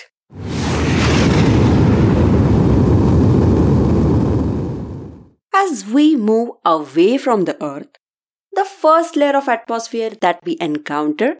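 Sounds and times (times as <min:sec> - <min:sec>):
space shuttle launch rumble: 0:00.3 - 0:05.3
speech: 0:05.6 - 0:08.0, 0:08.6 - 0:11.3.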